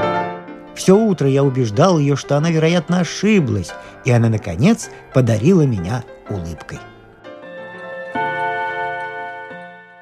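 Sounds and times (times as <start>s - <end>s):
speech: 0.8s - 6.9s
clock chiming in the evening: 7.7s - 10.0s.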